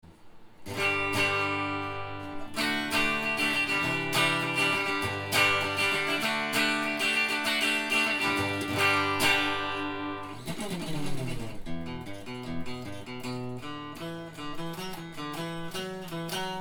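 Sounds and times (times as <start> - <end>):
guitar: 0.0 - 16.5.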